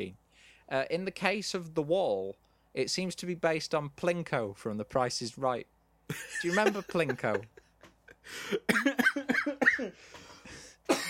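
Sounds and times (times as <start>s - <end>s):
speech: 0.0s - 7.6s, 8.2s - 10.2s
laughter: 6.1s - 8.3s
person coughing: 8.4s - 10.2s, 10.8s - 11.0s.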